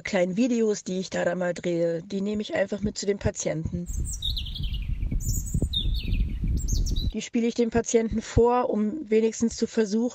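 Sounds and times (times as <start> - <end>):
speech: 0.0 - 4.6, 7.1 - 10.1
steady low rumble: 3.9 - 7.1
birdsong in spring among fields and meadows: 3.9 - 7.2.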